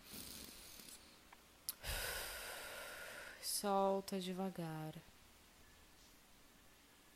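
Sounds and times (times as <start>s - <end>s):
deep breath in: 1.8s - 3.4s
speech: 3.6s - 5.2s.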